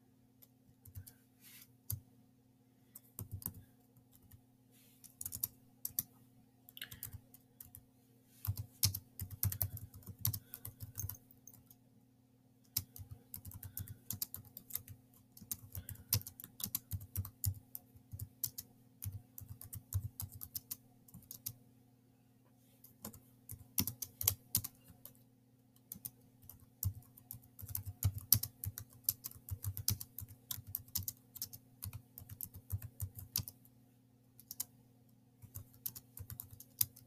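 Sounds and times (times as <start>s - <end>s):
typing on a computer keyboard: 0.4s - 1.2s, 3.0s - 4.4s, 5.1s - 6.1s, 6.8s - 7.8s, 8.4s - 11.8s, 12.6s - 21.6s, 23.0s - 25.2s, 25.8s - 33.7s, 34.4s - 34.7s, 35.4s - 37.0s.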